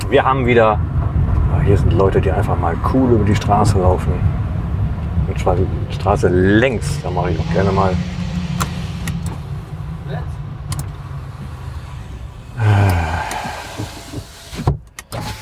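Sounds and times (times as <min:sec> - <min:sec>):
engine hum: 0:00.0 - 0:15.4
traffic: 0:00.0 - 0:15.4
speech: 0:00.1 - 0:00.9, 0:01.6 - 0:04.4, 0:05.4 - 0:08.2
car power window whirring as it closes: 0:10.7 - 0:15.4.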